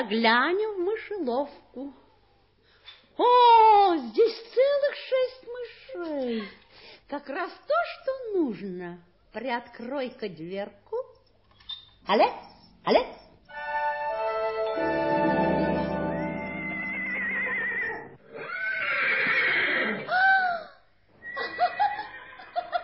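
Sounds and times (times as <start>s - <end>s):
speech: 0.0s - 2.0s, 3.2s - 11.0s, 12.0s - 13.9s
sustained ringing tone: 14.7s - 18.2s
horses neighing and snorting: 16.8s - 20.1s, 21.2s - 22.6s.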